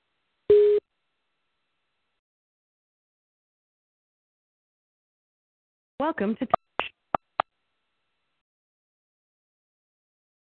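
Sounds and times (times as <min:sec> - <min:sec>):
telephone busy signal beep while phoning in to a show: 0:00.5 - 0:00.8
speech: 0:06.0 - 0:06.6.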